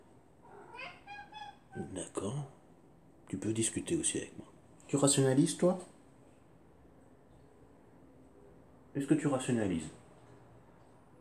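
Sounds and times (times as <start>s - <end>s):
cat meowing: 0.4s - 1.9s
speech: 1.8s - 2.6s, 3.3s - 6.0s, 9.0s - 10.0s.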